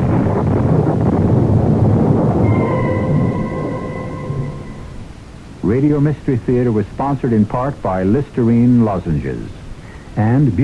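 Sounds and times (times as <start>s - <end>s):
thunder of a gathering storm rumbling: 0.0s - 6.8s
steady tones: 2.4s - 6.5s
speech: 5.7s - 9.6s, 10.2s - 10.6s.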